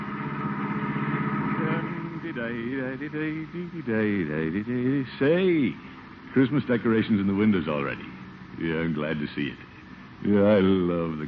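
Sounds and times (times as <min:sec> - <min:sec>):
family car engine humming while driven: 0:00.0 - 0:11.2
speech: 0:02.4 - 0:11.2.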